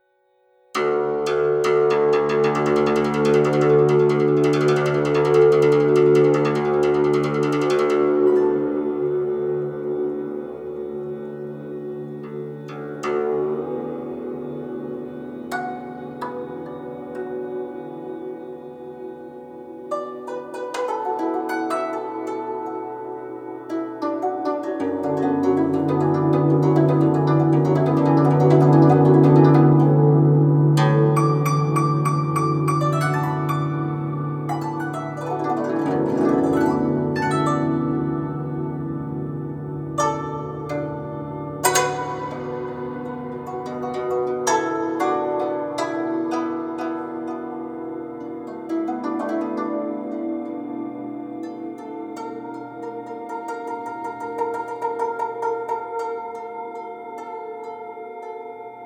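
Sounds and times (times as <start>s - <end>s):
guzheng playing: 0.7s - 58.8s.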